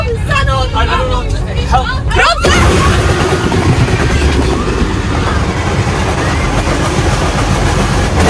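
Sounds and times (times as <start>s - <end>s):
bus scraping along a wire median barrier: 0.2s - 8.2s
rapid rattling impacts against wire median barrier: 2.4s - 8.2s.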